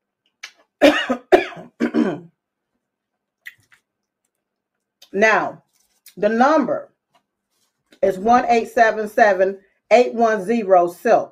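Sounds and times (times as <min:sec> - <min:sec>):
harsh raspy coughs with throat-clearing: 0:00.8 - 0:02.3
speech: 0:05.2 - 0:05.6, 0:06.2 - 0:06.9, 0:08.0 - 0:11.3.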